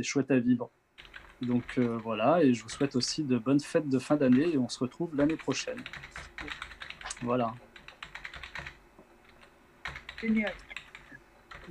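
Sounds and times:
speech: 0:00.0 - 0:00.8, 0:01.4 - 0:06.6, 0:07.2 - 0:07.7, 0:10.2 - 0:10.6
typing on a computer keyboard: 0:01.0 - 0:03.0, 0:04.2 - 0:04.6, 0:05.2 - 0:11.6.

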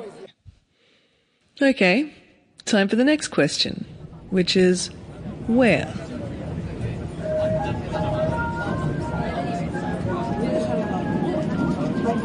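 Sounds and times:
speech: 0:01.6 - 0:06.1
Seoul metro line 5 subway train rumbling in South Korea: 0:02.7 - 0:12.2
crowd of passengers chattering indistinctly: 0:02.7 - 0:12.2.

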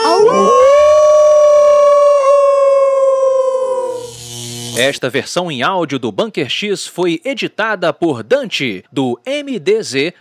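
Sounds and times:
several people howling like wolves: 0:00.0 - 0:04.0
speech: 0:04.8 - 0:10.2.

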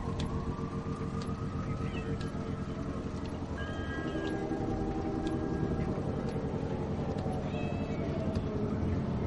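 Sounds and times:
steady low rumble: 0:00.0 - 0:09.2
cat meowing: 0:07.4 - 0:08.2.

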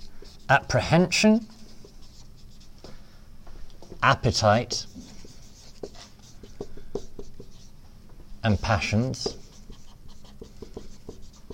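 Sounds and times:
pen strokes of handwriting during a lecture: 0:00.0 - 0:00.5, 0:01.6 - 0:02.7, 0:04.6 - 0:07.7, 0:08.5 - 0:11.5
speech: 0:00.5 - 0:01.6, 0:04.0 - 0:05.0, 0:08.4 - 0:09.4.

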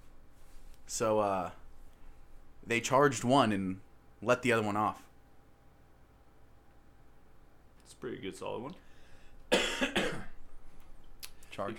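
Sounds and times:
speech: 0:00.9 - 0:01.6, 0:02.6 - 0:05.0, 0:08.0 - 0:08.8, 0:11.6 - 0:11.7
harsh coughs: 0:09.5 - 0:10.4.

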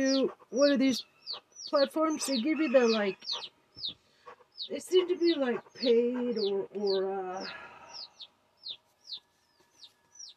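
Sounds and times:
speech: 0:00.0 - 0:04.0, 0:04.6 - 0:07.7
high-pitched bird chirps, possibly chickens or other fowl: 0:00.0 - 0:10.3.

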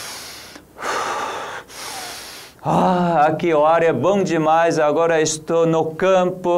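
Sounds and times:
person exhaling in a long airy breath: 0:00.0 - 0:02.9
speech: 0:02.6 - 0:06.5.

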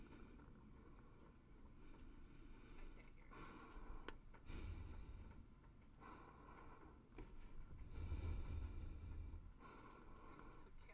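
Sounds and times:
low rumbling background: 0:00.1 - 0:10.9
breathing close to the microphone: 0:01.9 - 0:05.4, 0:07.8 - 0:10.6.

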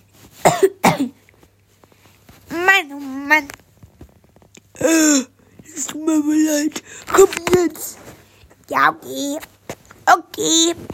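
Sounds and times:
low steady hum: 0:00.0 - 0:10.9
harsh coughs with a raspy rattle: 0:00.4 - 0:01.2.

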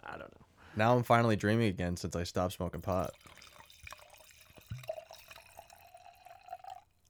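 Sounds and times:
speech: 0:00.1 - 0:03.4
wine pouring into a glass: 0:02.8 - 0:07.0
glass clink: 0:03.0 - 0:06.9.

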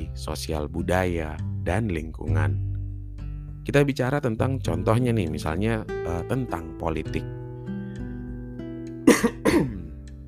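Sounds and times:
speech: 0:00.2 - 0:02.7, 0:03.6 - 0:07.4, 0:09.1 - 0:09.7
person coughing: 0:09.1 - 0:09.9.

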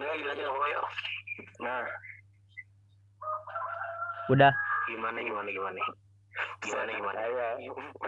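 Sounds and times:
speech: 0:00.1 - 0:02.1, 0:04.3 - 0:06.0, 0:06.6 - 0:08.0
rooster crowing in the morning: 0:03.2 - 0:05.2.

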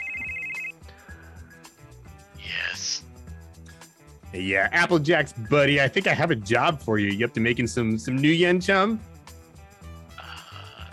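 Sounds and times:
loud electronic phone ring: 0:00.0 - 0:00.8
speech: 0:04.3 - 0:09.1.

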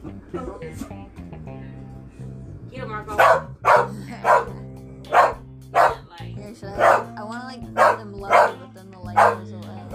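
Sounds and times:
dog barking: 0:03.1 - 0:06.1, 0:06.8 - 0:07.1, 0:07.7 - 0:09.9
person speaking: 0:06.2 - 0:09.9.

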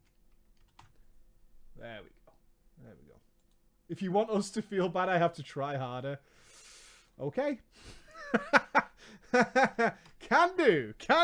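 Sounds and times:
typing on a computer keyboard: 0:00.0 - 0:01.0
speech: 0:01.8 - 0:02.2, 0:02.8 - 0:03.3, 0:03.9 - 0:06.4, 0:07.2 - 0:11.2.

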